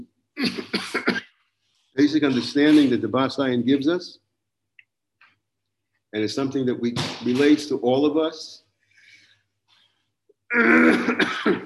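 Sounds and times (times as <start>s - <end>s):
harsh raspy cough with throat-clearing: 0.4s - 1.4s, 2.2s - 3.2s, 10.5s - 11.6s
speech: 2.0s - 4.2s, 6.1s - 8.6s, 10.5s - 11.6s.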